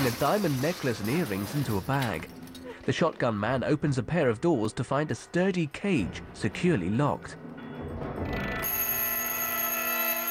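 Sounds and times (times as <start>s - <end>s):
speech: 0.0s - 7.4s
timer ringing in a jewelry store during a robbery: 7.6s - 10.2s.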